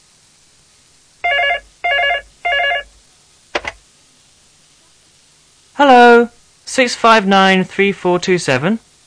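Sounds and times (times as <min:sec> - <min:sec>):
telephone ringing in loud electronic bursts: 0:01.2 - 0:02.9
speech: 0:05.8 - 0:08.9.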